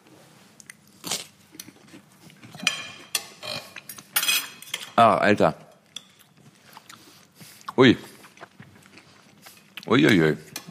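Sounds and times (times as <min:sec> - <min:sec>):
biting and chewing crunchy bread: 0:00.6 - 0:02.6, 0:05.8 - 0:10.6
speech: 0:05.0 - 0:05.6, 0:07.8 - 0:08.1, 0:09.9 - 0:10.5.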